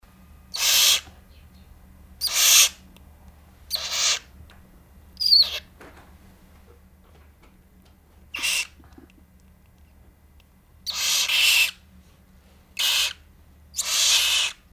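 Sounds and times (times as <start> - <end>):
baby barn owl calling: 0.5 - 2.9, 3.7 - 4.4, 5.2 - 5.8, 8.3 - 8.8, 10.8 - 11.8, 12.8 - 14.7.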